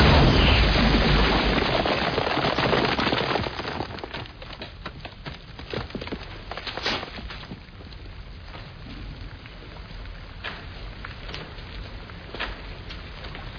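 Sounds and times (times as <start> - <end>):
weapon blast breaking through a calcite rock formation: 0.0 - 7.6
rubble-like crackle of broken calcite rock: 0.0 - 13.5.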